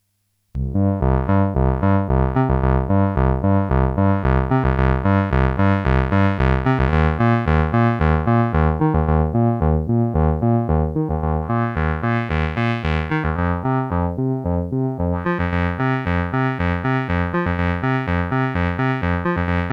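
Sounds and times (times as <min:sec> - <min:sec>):
Casio MT 400V keyboard bass solo with wah filter: 0:00.6 - 0:19.7.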